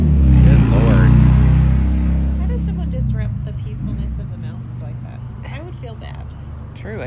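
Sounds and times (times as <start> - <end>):
motorbike roaring past: 0.0 - 6.6.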